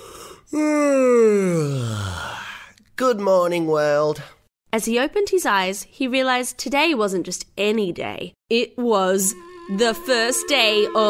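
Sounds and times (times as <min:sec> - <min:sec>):
person imitating a big yawn on waking up: 0:00.0 - 0:02.7
speech: 0:00.5 - 0:00.8, 0:03.0 - 0:11.0.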